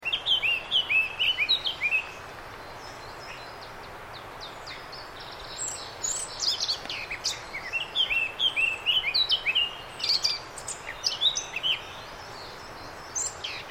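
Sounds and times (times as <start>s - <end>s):
Eurasian blackcap singing: 0.0s - 13.6s
soft steady hiss: 0.0s - 13.6s.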